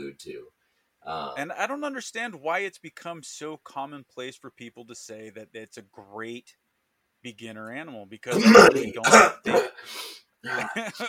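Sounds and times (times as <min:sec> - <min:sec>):
speech: 0:00.2 - 0:06.6, 0:07.2 - 0:11.0
throat clearing: 0:08.4 - 0:09.8
laughter: 0:10.5 - 0:11.0.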